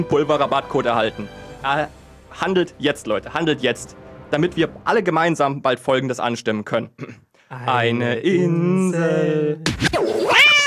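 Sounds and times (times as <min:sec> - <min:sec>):
speech: 0:00.0 - 0:10.1
cat meowing with drawn-out yowls: 0:10.2 - 0:10.6.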